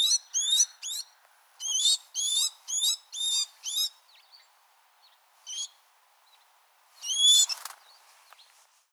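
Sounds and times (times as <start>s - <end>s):
great tit Parus major short high upswept calls: 0.0s - 4.0s, 7.0s - 7.8s.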